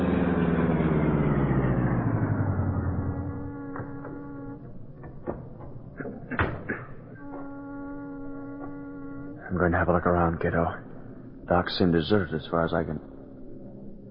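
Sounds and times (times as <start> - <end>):
car engine slowing and idling: 0.0 - 14.0
sharp clicks and knocks: 3.7 - 7.5
speech: 9.6 - 10.9, 11.5 - 13.2.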